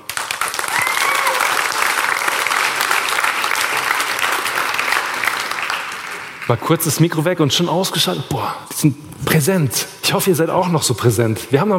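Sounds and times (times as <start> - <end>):
crowd applauding loudly: 0.0 - 6.8
speech: 6.5 - 11.7.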